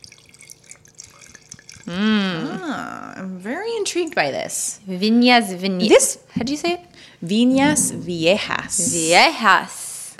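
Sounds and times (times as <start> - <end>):
red blend wine pouring into a glass: 0.0 - 2.6
speech: 1.8 - 9.8.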